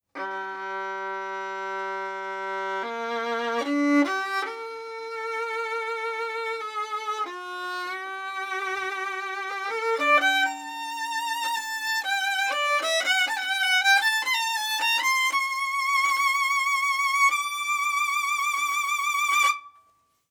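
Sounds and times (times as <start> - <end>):
baroque bow on gut strings: 0.3 - 19.6.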